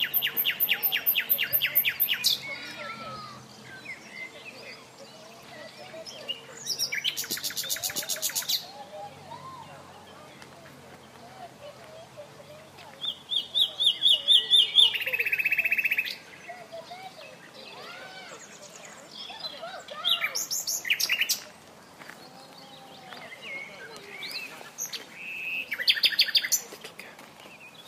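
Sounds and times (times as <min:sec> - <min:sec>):
common nightingale Luscinia megarhynchos singing: 0:00.0 - 0:08.8, 0:13.0 - 0:21.5, 0:22.2 - 0:26.8.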